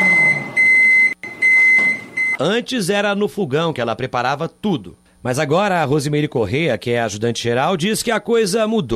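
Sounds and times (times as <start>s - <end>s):
microwave oven beeping: 0.0s - 2.4s
speech: 2.4s - 8.9s.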